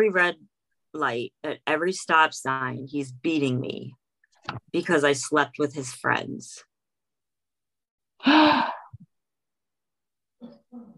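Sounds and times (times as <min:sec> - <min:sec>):
speech: 0:00.0 - 0:06.7, 0:08.2 - 0:08.8
person gasping sharply: 0:08.2 - 0:09.0
soft breathy sounds: 0:08.2 - 0:09.1.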